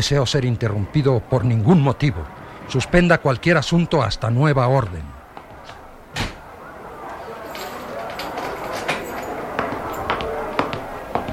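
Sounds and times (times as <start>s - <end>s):
speech: 0.0s - 5.2s
office door shutting with a thud: 6.1s - 6.5s
door being locked with a key: 7.1s - 10.1s.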